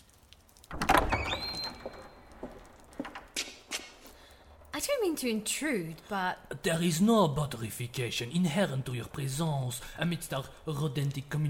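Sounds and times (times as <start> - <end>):
door pulled open with a thud and high creak: 0.6 - 4.0
light footsteps: 1.8 - 4.5
speech: 4.8 - 11.4.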